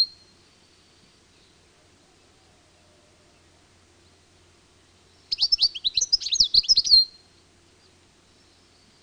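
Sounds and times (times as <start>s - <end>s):
European goldfinch singing a jangling phrase of liquid twitters: 0.0s - 1.6s, 4.8s - 9.0s.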